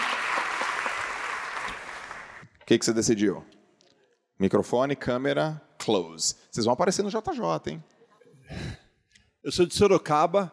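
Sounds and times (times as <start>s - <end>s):
audience applause at a live talk event: 0.0s - 2.4s
speech: 2.7s - 3.6s, 4.4s - 8.7s, 9.4s - 10.5s.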